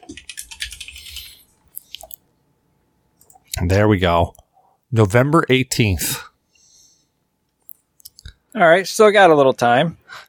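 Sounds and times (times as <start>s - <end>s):
typing on a computer keyboard: 0.0s - 2.2s
speech: 3.6s - 6.1s, 8.5s - 10.2s.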